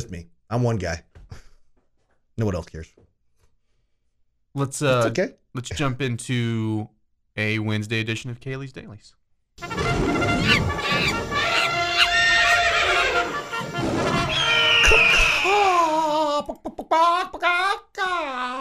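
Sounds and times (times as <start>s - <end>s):
speech: 0.0s - 1.4s, 2.4s - 3.1s, 4.5s - 11.2s, 16.5s - 18.6s
loud drawn-out horse whinny: 9.6s - 15.6s
short choppy chicken-like clucks: 10.0s - 13.4s.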